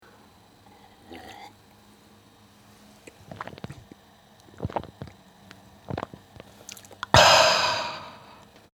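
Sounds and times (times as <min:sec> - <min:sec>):
person drinking: 0:00.7 - 0:01.6, 0:03.0 - 0:08.5.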